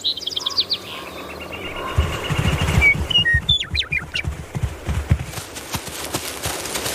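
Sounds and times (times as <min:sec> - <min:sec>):
birds singing in an open spring meadow in Yellowstone National Park: 0:00.0 - 0:05.3
American bison hooves thudding while strolling: 0:01.7 - 0:06.9.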